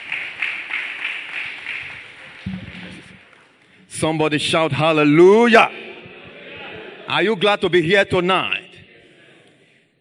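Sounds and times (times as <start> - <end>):
audience applauding together: 0.0 - 3.6
speech: 4.0 - 5.8, 7.1 - 8.6.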